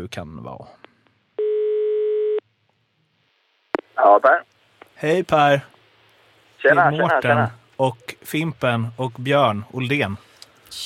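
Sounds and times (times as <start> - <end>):
speech: 0.0 - 0.8, 4.0 - 5.7, 6.6 - 10.8
telephone ringing tone while placing a call: 1.4 - 2.4.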